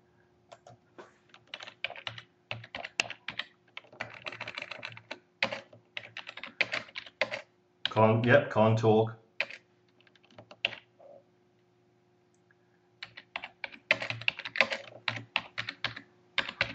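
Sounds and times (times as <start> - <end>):
typing on a computer keyboard: 0.5 - 8.0, 9.4 - 10.9, 13.0 - 16.7
speech: 8.0 - 9.2.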